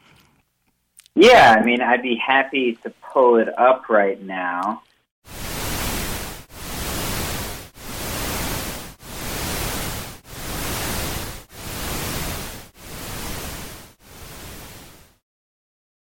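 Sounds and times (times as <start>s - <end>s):
speech: 1.2s - 4.9s
pulsing broadband rushing noise: 5.3s - 15.2s.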